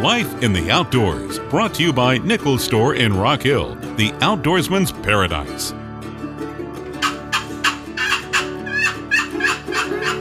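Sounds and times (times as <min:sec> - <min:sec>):
speech: 0:00.0 - 0:05.8
wild turkey yelping: 0:07.0 - 0:10.1.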